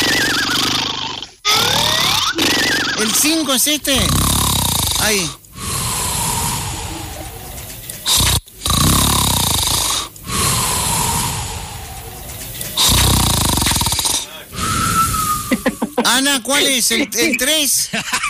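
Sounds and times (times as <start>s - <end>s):
loud harsh rasping snoring: 0.0s - 15.6s
speech: 3.0s - 4.4s, 5.0s - 5.4s, 16.2s - 18.2s
laughter: 6.4s - 8.0s, 15.4s - 18.2s.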